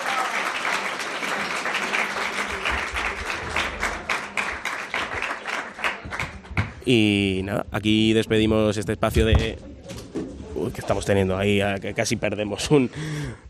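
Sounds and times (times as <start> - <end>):
audience applause: 0.0 - 6.7
speech: 6.9 - 9.7, 10.6 - 13.4.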